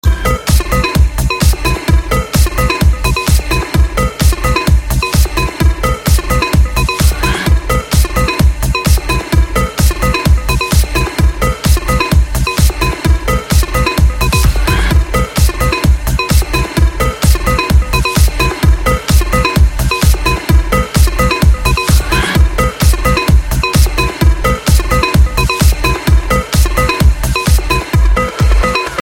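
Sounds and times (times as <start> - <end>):
EDM tone: 0.0 - 29.0.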